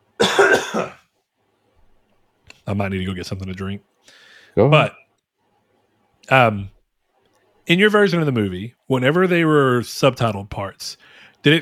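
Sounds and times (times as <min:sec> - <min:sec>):
person coughing harshly: 0:00.2 - 0:01.0
speech: 0:00.6 - 0:01.0, 0:02.7 - 0:05.0, 0:06.3 - 0:06.8, 0:07.7 - 0:11.6.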